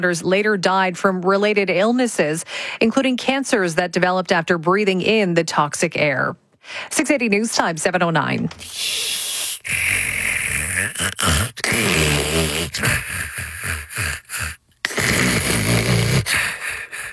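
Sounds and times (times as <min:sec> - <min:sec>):
speech: 0:00.0 - 0:10.0, 0:10.8 - 0:16.4
sleeper snoring: 0:08.8 - 0:16.9.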